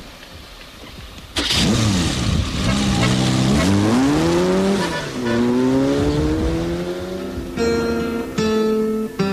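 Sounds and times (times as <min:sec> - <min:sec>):
car engine revving and speeding away through gear changes: 0:01.3 - 0:09.2.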